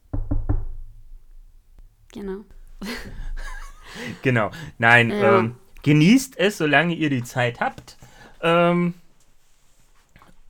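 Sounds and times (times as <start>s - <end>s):
knocking on wood: 0.1s - 1.0s
speech: 2.2s - 9.0s
laughter: 2.8s - 5.6s.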